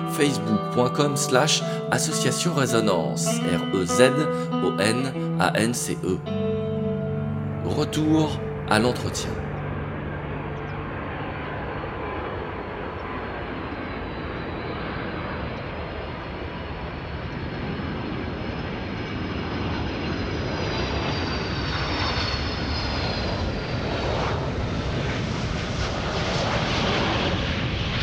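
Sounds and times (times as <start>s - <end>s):
speech: 0.2s - 6.5s, 7.7s - 9.5s
jet airliner engines roaring while landing: 9.5s - 28.0s
rumbling of plane touching down and rolling along the runway: 9.5s - 28.0s.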